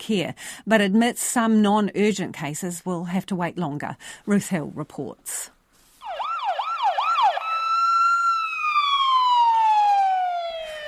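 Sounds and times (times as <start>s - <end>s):
speech: 0.0s - 5.6s
ambulance siren wailing: 6.0s - 10.8s.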